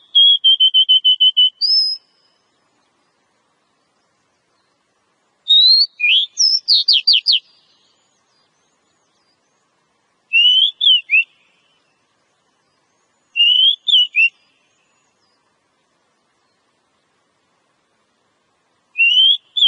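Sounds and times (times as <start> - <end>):
female Oriental magpie-robin singing: 0.0 - 3.0, 5.4 - 15.5, 18.9 - 19.6.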